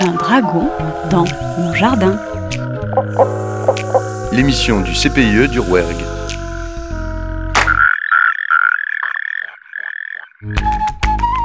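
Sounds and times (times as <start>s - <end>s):
brief music: 0.0s - 7.8s, 10.4s - 11.4s
Mediterranean tree frog giving loud nasal croaks: 0.0s - 10.6s
speech: 0.1s - 3.4s, 4.3s - 6.1s.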